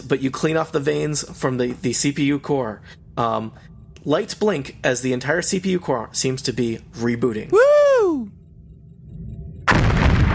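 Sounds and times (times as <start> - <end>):
low rumbling hum: 0.0 - 10.3
speech: 0.1 - 8.3
loud explosion roaring and crackling: 9.7 - 10.3.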